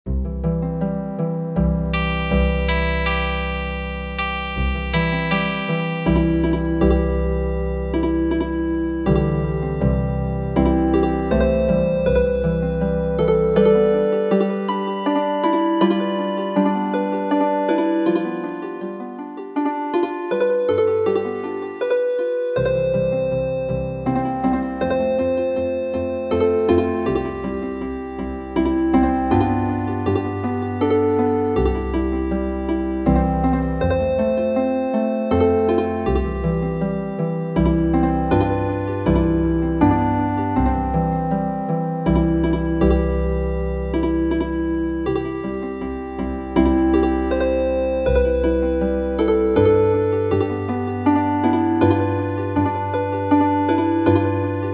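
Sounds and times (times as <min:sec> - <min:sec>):
healing harp lullaby from MIDI: 0:00.4 - 0:54.7.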